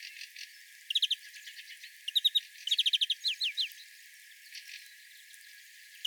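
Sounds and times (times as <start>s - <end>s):
European greenfinch Chloris chloris short sharp chirping calls: 0.9s - 1.2s, 2.1s - 3.7s.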